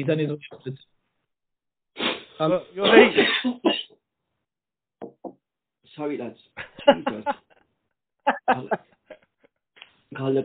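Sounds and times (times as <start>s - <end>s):
speech: 0.0s - 1.0s, 2.0s - 3.9s, 6.0s - 7.4s, 8.2s - 8.9s, 10.1s - 10.4s
person coughing with harsh raspy coughs: 2.8s - 3.9s
laughter: 6.6s - 7.6s, 8.3s - 8.9s.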